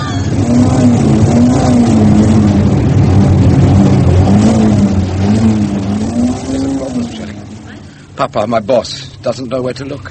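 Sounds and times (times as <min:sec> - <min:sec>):
fuel-injected car engine revving: 0:00.0 - 0:10.0
speech: 0:08.2 - 0:10.0.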